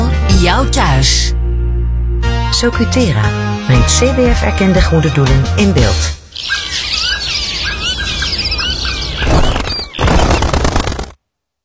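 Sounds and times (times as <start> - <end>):
speech: 0.4 - 1.4, 2.5 - 6.9
dense chorus of bird chirps and squeals: 6.2 - 11.0
rush of birds flapping wings: 6.4 - 11.2.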